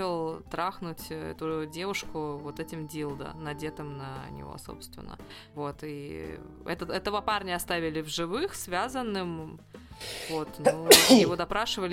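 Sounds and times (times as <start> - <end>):
speech: 0.0 - 11.9
loud sneeze: 10.0 - 11.4.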